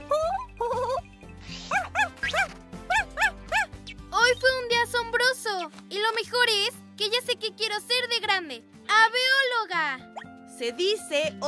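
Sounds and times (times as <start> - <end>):
soft steady music: 0.0 - 11.4
newly hatched bird giving dog-like barking calls: 1.4 - 4.5
speech: 10.6 - 11.4.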